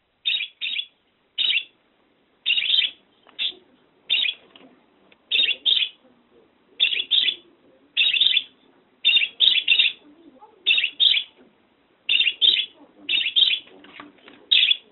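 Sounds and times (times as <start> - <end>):
budgerigar calling with scratchy chirps: 0.2 - 1.8, 2.4 - 4.4, 5.3 - 6.0, 6.8 - 10.0, 10.6 - 11.4, 12.0 - 14.9.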